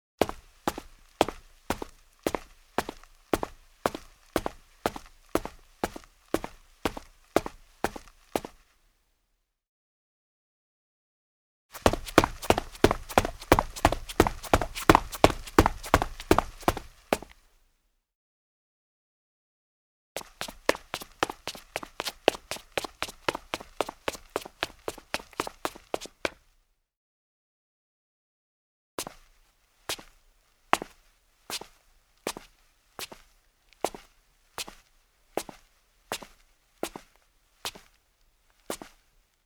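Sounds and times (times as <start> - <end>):
male footsteps in sneakers on concrete: 0.2 - 8.7, 11.8 - 17.4, 20.2 - 26.5, 29.0 - 39.1.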